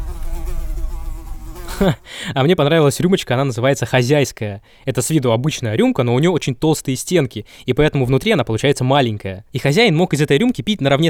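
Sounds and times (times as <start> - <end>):
housefly buzzing: 0.0 - 2.1
speech: 1.8 - 11.0.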